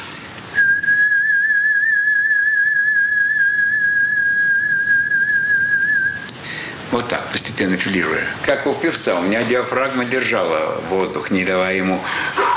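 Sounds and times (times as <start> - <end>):
person lip whistling on one pitch: 0.6 - 6.3
speech: 7.0 - 12.4.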